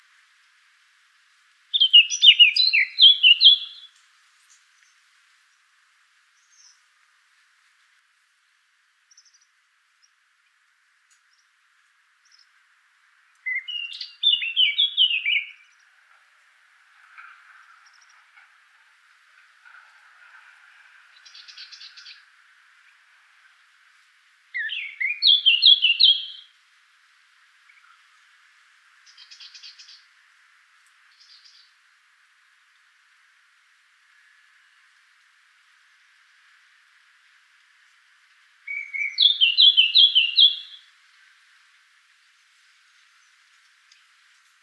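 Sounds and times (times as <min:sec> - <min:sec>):
Blackcap Sylvia atricapilla calling: 0:01.8 - 0:03.9, 0:13.5 - 0:15.6, 0:24.6 - 0:26.5, 0:38.7 - 0:40.9.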